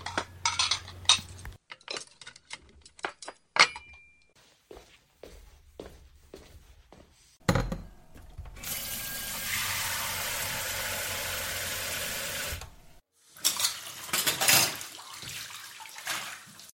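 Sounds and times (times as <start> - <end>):
dishes and chopsticks clattering as they're cleared in a kitchen: 0.0 - 4.0
running water from a tap: 8.6 - 16.7.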